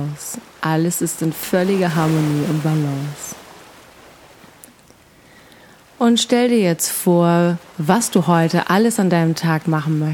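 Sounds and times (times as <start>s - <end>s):
speech: 0.0s - 3.3s, 6.0s - 10.1s
ocean surf washing steadily: 0.0s - 10.0s.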